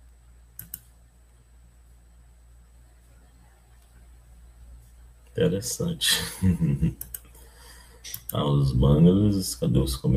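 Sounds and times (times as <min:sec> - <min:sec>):
steady low hum: 0:00.0 - 0:10.1
computer mouse clicks: 0:00.6 - 0:00.9, 0:07.0 - 0:07.3, 0:08.1 - 0:08.4
speech: 0:05.4 - 0:07.2, 0:08.3 - 0:10.1.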